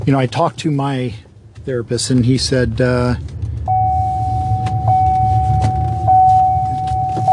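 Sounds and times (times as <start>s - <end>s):
speech: 0.0s - 3.4s
low idling hum: 0.0s - 7.3s
car seatbelt warning chime: 3.7s - 7.3s.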